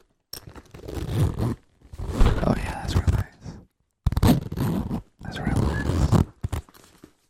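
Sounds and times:
zipper being pulled: 0.4s - 3.2s, 4.1s - 6.7s.

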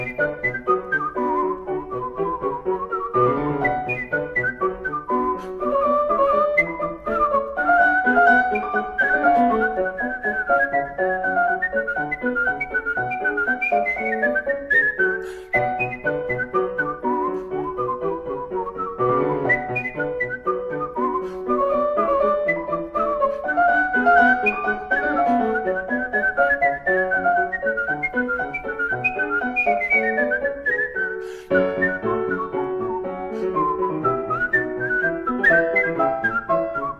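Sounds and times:
virtuoso whistling a lively Baroque orchestral suite piece: 0.0s - 36.9s.

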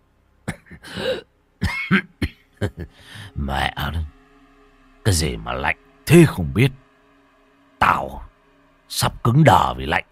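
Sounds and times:
man coughing heavily with rough chesty bursts: 0.4s - 3.0s
speech: 5.1s - 6.8s, 8.9s - 10.1s.

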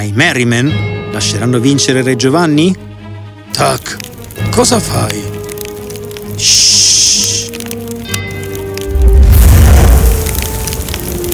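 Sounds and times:
speech: 0.0s - 2.9s, 3.5s - 5.4s, 6.4s - 7.4s
fire consuming a castle: 3.5s - 11.3s.

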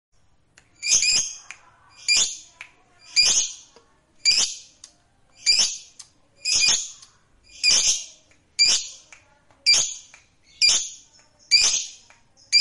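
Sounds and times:
fighter-type lovebird harsh squeaky chirps: 0.8s - 1.4s, 2.0s - 3.6s, 4.2s - 4.7s, 5.4s - 9.0s, 9.7s - 12.6s.

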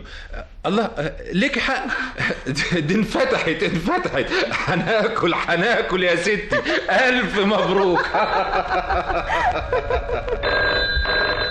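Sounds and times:
speech: 0.0s - 11.0s
laughter: 2.2s - 10.6s
telephone ringing with electronic trill: 10.4s - 11.5s.

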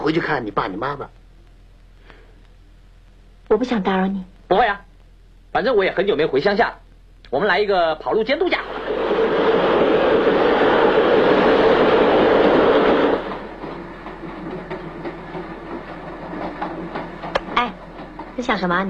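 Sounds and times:
speech: 0.0s - 1.2s, 3.5s - 4.9s, 5.5s - 8.7s, 18.4s - 18.8s
train running on rails: 8.6s - 18.8s.

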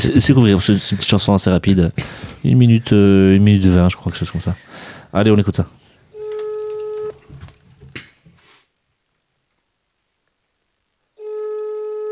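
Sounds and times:
speech: 0.0s - 5.8s
steady electronic telephone tone opening a song: 6.1s - 7.2s, 11.2s - 12.0s.

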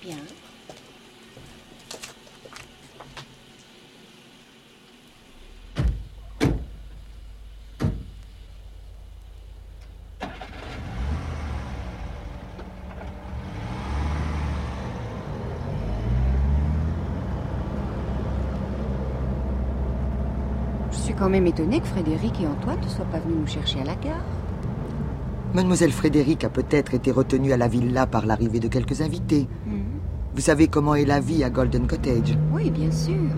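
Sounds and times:
chauffeur's car engine starting and car pulling away: 5.2s - 33.3s
chauffeur's car door slamming: 5.7s - 6.8s, 7.8s - 8.2s
speech: 21.2s - 24.4s, 25.5s - 29.7s, 30.4s - 33.3s.

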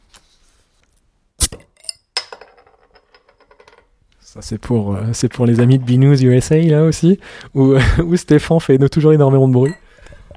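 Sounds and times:
speech: 4.3s - 9.8s
beer bottles being uncapped: 9.6s - 10.3s.

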